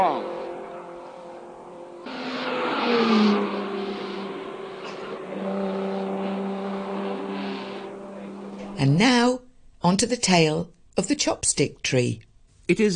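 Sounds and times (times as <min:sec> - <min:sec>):
race car engines roaring around a motor racing circuit in Macau: 0:00.0 - 0:09.2
speech: 0:08.8 - 0:12.9.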